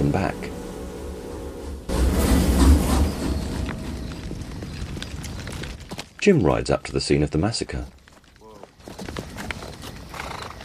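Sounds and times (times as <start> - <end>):
armored steam train rumbling and hissing as it gathers speed: 0.0 - 4.4
speech: 0.1 - 0.6, 6.2 - 8.0.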